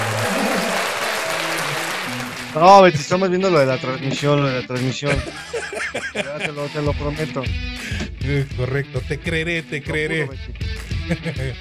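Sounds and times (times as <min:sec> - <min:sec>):
faint murmur of voices: 0:00.0 - 0:00.6
laughter: 0:00.0 - 0:01.0, 0:05.1 - 0:06.9, 0:07.8 - 0:10.3, 0:11.0 - 0:11.5
applause from many hands: 0:00.0 - 0:03.2
speech: 0:02.6 - 0:11.5.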